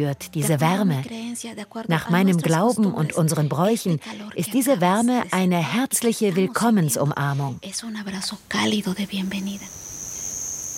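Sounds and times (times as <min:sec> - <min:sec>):
speech: 0:00.0 - 0:09.9
high-pitched cricket trill in a cave: 0:08.4 - 0:10.7.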